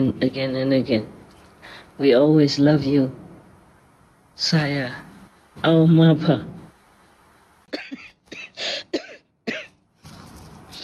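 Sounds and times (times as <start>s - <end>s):
speech: 0.0s - 3.2s, 4.4s - 6.6s
soft hiss: 0.0s - 10.8s
breathy exhale: 1.6s - 2.0s, 8.6s - 8.9s
harsh coughs: 7.7s - 9.8s.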